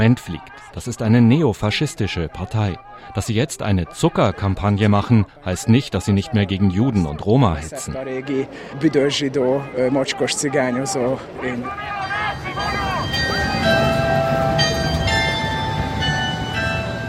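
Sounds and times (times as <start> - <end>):
speech: 0.0 - 13.3
hubbub of a busy city square: 0.0 - 17.0
church carillon chiming: 11.9 - 17.0.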